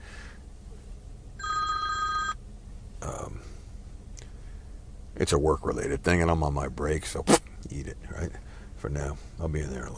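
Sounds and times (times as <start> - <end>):
phone ringing with an incoming call: 1.4 - 2.4
speech: 5.2 - 9.9.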